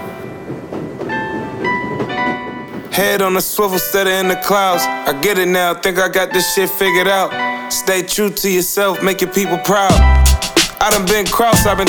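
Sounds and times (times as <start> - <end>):
train passing by on rails: 0.0 - 5.8
speech: 3.0 - 10.2, 10.8 - 11.8.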